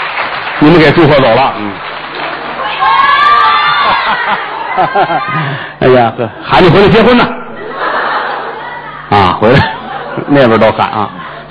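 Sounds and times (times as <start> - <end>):
large audience clapping and cheering: 0.0 - 5.3
speech: 0.6 - 1.9, 3.9 - 7.4, 9.4 - 11.2
laughter: 2.3 - 11.4.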